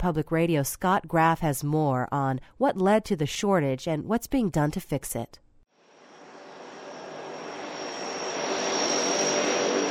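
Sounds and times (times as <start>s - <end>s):
speech: 0.0s - 5.4s
air tanker plane engines whining and roaring while taxiing onto tarmac: 5.8s - 9.8s.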